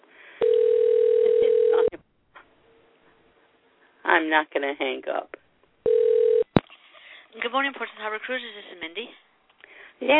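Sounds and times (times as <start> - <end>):
telephone dial tone: 0.4 - 1.9, 5.9 - 6.5
speech: 4.2 - 5.4, 7.5 - 9.2, 10.0 - 10.1.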